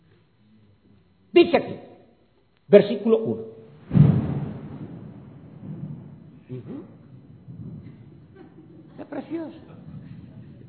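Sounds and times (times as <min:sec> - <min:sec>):
speech: 0:01.4 - 0:01.9, 0:02.7 - 0:04.0, 0:06.5 - 0:07.0, 0:09.0 - 0:09.8
thunder rumbling: 0:03.8 - 0:08.4.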